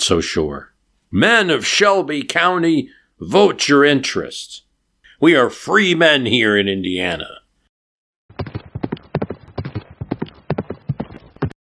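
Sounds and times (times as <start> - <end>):
speech: 0.0 - 4.6, 5.2 - 7.4
hooves of a ridden horse clip-clopping: 8.4 - 11.6.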